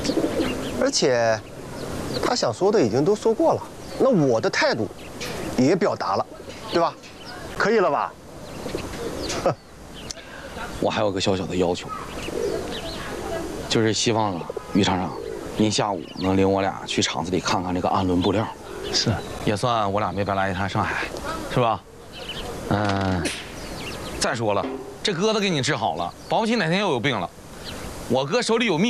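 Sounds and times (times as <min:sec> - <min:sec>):
pigeons cooing: 0:00.0 - 0:26.6
lively overlapping conversation: 0:00.0 - 0:28.8
speech: 0:00.8 - 0:01.5, 0:02.1 - 0:08.8, 0:09.4 - 0:09.7, 0:10.8 - 0:12.4, 0:13.7 - 0:21.9, 0:22.7 - 0:23.4, 0:24.2 - 0:27.4, 0:28.1 - 0:28.8.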